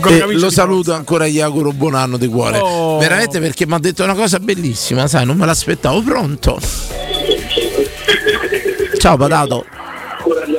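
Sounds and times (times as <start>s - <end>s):
speech: 0.0s - 7.3s, 9.0s - 10.5s
thin radio-like voice on a phone line: 7.1s - 10.5s.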